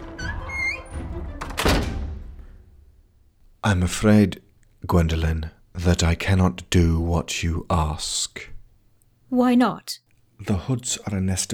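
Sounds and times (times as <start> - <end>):
door hinge creaking: 0.0 - 2.4
speech: 3.6 - 8.5, 9.3 - 11.5.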